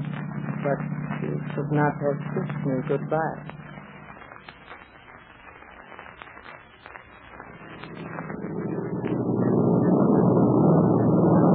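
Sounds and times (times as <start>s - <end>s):
airplane engine drone heard from inside the cabin: 0.0s - 4.0s, 7.5s - 11.5s
speech: 0.6s - 3.6s.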